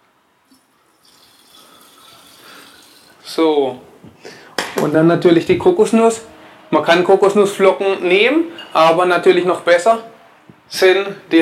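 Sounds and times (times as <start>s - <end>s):
boiling water poured into a blender jar to make coconut cream: 0.9s - 3.2s
speech: 3.3s - 3.9s, 4.8s - 10.1s, 10.7s - 11.4s.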